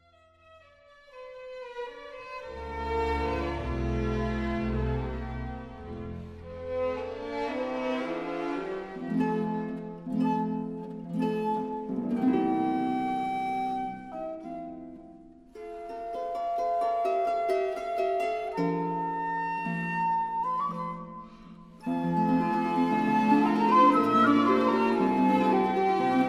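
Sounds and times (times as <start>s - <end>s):
flute and harp concerto: 2.4s - 26.2s.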